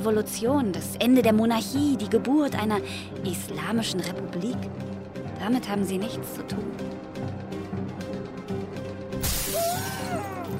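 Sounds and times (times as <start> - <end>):
speech: 0.0 - 7.4
glass pane shattering: 9.2 - 10.5.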